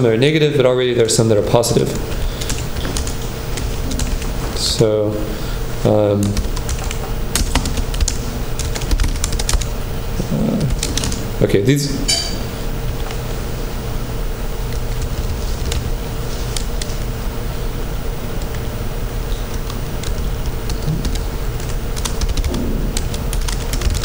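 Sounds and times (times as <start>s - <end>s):
speech: 0.0s - 2.3s, 4.6s - 6.5s, 11.4s - 12.2s
constant low hum of noise: 0.0s - 24.0s
typing on a computer keyboard: 2.4s - 4.3s, 6.2s - 9.7s, 10.6s - 11.2s, 19.5s - 24.0s.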